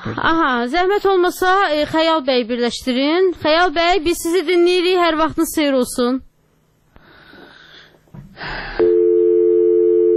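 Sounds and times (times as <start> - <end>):
speech: 0.0 - 6.3
breathy noise: 7.0 - 9.2
telephone busy signal on a failed call: 8.8 - 10.1.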